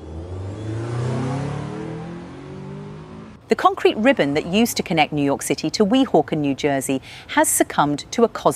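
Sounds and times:
car engine revving in a traffic jam: 0.0 - 3.5
speech: 3.5 - 8.5.

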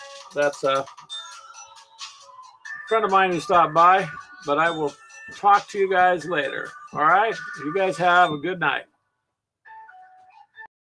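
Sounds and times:
speech: 0.3 - 1.1, 2.9 - 8.9
bright melodic electronic phone ringtone: 0.9 - 8.6.

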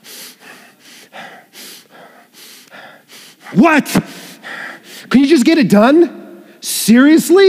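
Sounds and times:
quick shallow breaths from a stressed person: 0.0 - 5.1
speech: 3.5 - 4.1, 5.1 - 6.2, 6.9 - 7.4.

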